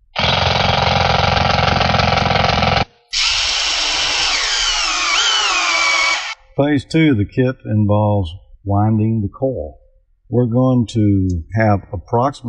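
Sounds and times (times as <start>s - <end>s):
power drill drilling holes through a board: 0.0s - 6.4s
speech: 6.6s - 12.4s.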